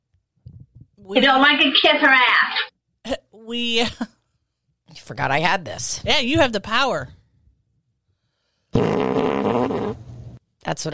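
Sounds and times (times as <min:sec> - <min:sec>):
speech: 0:01.0 - 0:04.2, 0:04.9 - 0:07.2, 0:10.7 - 0:10.9
fart sound effect: 0:08.8 - 0:10.1.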